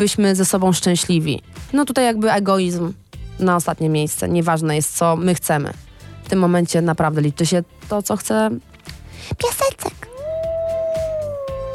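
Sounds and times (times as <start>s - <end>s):
speech: 0.0s - 10.1s
small dog howling: 10.1s - 11.7s.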